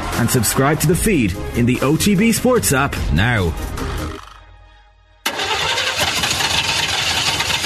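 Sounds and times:
speech: 0.2s - 3.8s
van engine cranking and failing to start: 5.2s - 7.6s.

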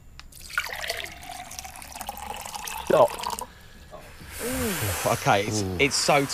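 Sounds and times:
liquid pouring into a shot glass: 0.3s - 3.6s
speech: 2.9s - 3.2s, 5.0s - 6.3s.

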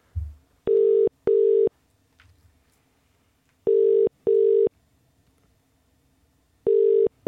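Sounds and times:
faint hum: 0.0s - 7.2s
outgoing phone ringback tone double ring: 0.7s - 1.7s, 3.7s - 4.7s, 6.7s - 7.2s.

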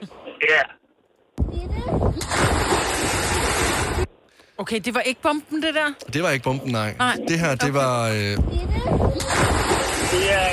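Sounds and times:
outdoor wind: 0.0s - 10.5s
speech: 0.5s - 0.8s, 4.6s - 10.5s
child's voice: 1.4s - 2.2s, 8.4s - 9.3s
outdoor water noise: 1.4s - 4.3s, 5.0s - 10.5s
person plunging into water: 2.2s - 4.1s, 9.2s - 10.5s.

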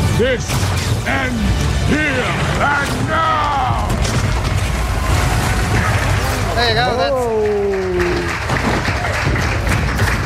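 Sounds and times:
speech: 0.2s - 3.3s, 6.6s - 7.8s
crowd applauding: 3.5s - 10.2s.

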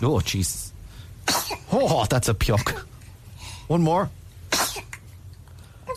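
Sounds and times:
speech: 0.0s - 2.9s, 3.7s - 4.2s
faint low hum: 0.0s - 5.9s
baby sneezing: 1.2s - 1.7s, 4.5s - 5.0s.

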